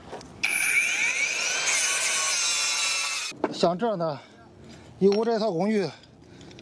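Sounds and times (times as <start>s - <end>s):
cutting machine cutting ground stake remnants: 0.4s - 3.3s
speech: 3.6s - 4.3s, 5.0s - 6.0s.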